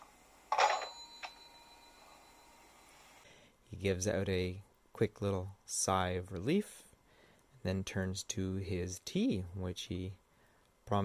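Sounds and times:
rotary phone receiver dropped onto its cradle: 0:00.5 - 0:01.4
rotary phone metallic bell ring: 0:00.5 - 0:02.8
speech: 0:03.7 - 0:06.9, 0:07.6 - 0:10.2, 0:10.9 - 0:11.0.

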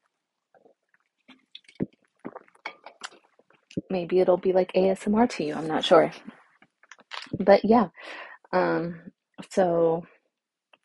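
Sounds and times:
slurping and swallowing a margarita from a glass: 0:01.4 - 0:03.7
speech: 0:03.8 - 0:06.3, 0:07.4 - 0:10.1.

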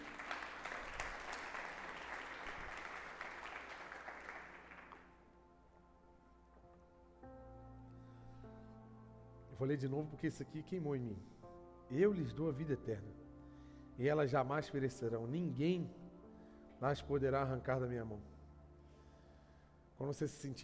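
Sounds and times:
audience applauding during a sermon: 0:00.0 - 0:05.2
speech: 0:09.6 - 0:13.2, 0:14.0 - 0:16.0, 0:16.8 - 0:18.3, 0:20.0 - 0:20.6.

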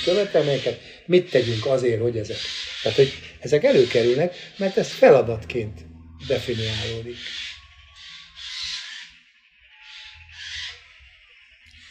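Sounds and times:
speech: 0:00.0 - 0:07.5
birds chirping and twittering in a garden: 0:00.0 - 0:11.8
low rumble of noise: 0:01.9 - 0:08.4.

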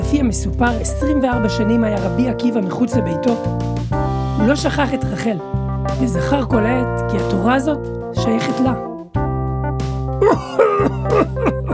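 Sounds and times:
speech: 0:00.1 - 0:08.9, 0:10.2 - 0:11.7
harsh voiced coughs: 0:10.2 - 0:11.7
laughter: 0:10.2 - 0:11.7.

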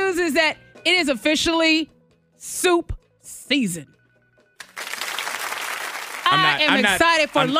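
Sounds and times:
speech: 0:00.3 - 0:04.0, 0:06.3 - 0:07.5
clapping of many hands: 0:04.6 - 0:06.8.

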